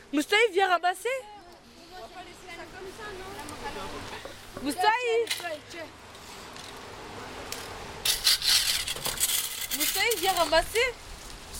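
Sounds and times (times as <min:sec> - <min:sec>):
speech: 0:00.1 - 0:01.4, 0:02.1 - 0:06.0, 0:09.8 - 0:11.0
scraping the ground: 0:08.0 - 0:11.5.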